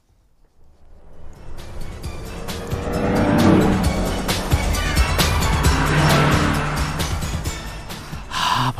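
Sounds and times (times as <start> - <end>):
car speeding past: 0.4 - 8.2.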